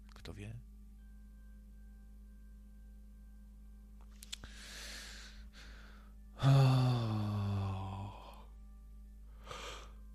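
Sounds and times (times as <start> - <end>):
speech: 0.2 - 0.7
person yawning: 6.4 - 8.5.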